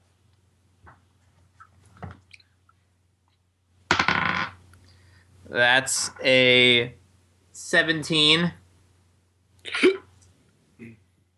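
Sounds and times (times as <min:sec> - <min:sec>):
speech: 0:05.5 - 0:07.0, 0:07.6 - 0:08.6
sharp hiccup with a breathy gulp: 0:09.6 - 0:10.1.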